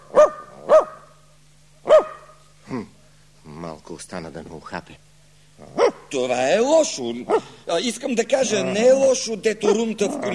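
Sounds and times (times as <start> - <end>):
dog barking: 0.0 - 1.2, 1.8 - 2.5, 5.7 - 6.1, 7.3 - 7.6, 9.6 - 10.0
low steady hum: 0.0 - 10.3
speech: 2.7 - 3.0, 3.9 - 10.3.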